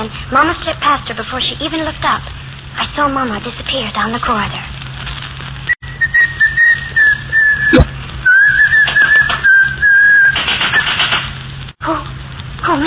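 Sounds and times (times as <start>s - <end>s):
speech: 0.0s - 4.8s
person whistling a sustained tone: 5.8s - 10.9s.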